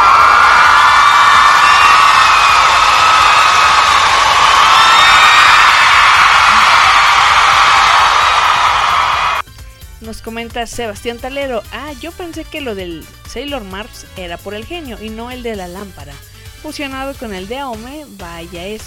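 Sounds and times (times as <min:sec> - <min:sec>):
crowd cheering and whooping in an ovation: 0:00.0 - 0:09.4
shrill whistles: 0:00.0 - 0:09.4
speech: 0:10.3 - 0:18.8.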